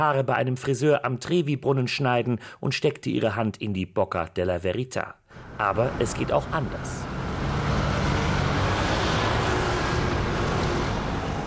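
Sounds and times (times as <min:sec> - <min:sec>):
speech: 0:00.0 - 0:07.2
dense city road traffic roar of engines and tires: 0:05.3 - 0:11.4.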